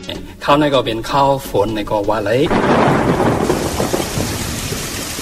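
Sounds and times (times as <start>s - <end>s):
speech: 0.5s - 3.2s
deep roll of thunder rumbling: 2.4s - 5.1s
heavy rain: 2.5s - 5.1s.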